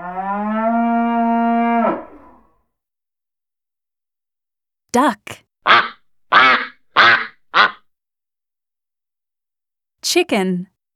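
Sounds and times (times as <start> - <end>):
cow mooing: 0.0 - 2.5
speech: 5.0 - 5.9, 10.2 - 10.7.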